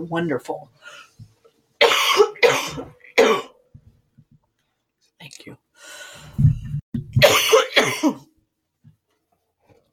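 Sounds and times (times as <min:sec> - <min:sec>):
speech: 0:00.0 - 0:01.1, 0:02.5 - 0:03.4, 0:05.2 - 0:06.3, 0:07.8 - 0:08.3
short coughs: 0:01.8 - 0:03.6, 0:07.2 - 0:08.3.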